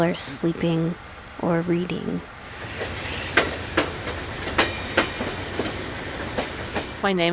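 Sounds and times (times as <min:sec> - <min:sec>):
speech: 0:00.0 - 0:03.2, 0:07.0 - 0:07.3
passenger train rumbling on tracks heard from inside a car: 0:00.0 - 0:07.3
clickety-clack of train wheel joints: 0:02.8 - 0:07.0.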